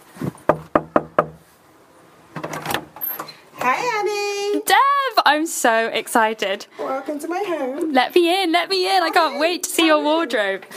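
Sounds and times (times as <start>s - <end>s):
knocking on the front door of a house: 0.5s - 1.4s
speech: 4.0s - 10.7s.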